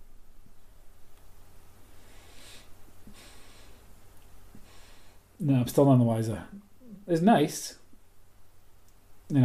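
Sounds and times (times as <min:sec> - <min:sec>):
low steady hum: 0:00.0 - 0:09.4
person sniffing a burning scented product: 0:02.0 - 0:03.9
speech: 0:05.4 - 0:07.8.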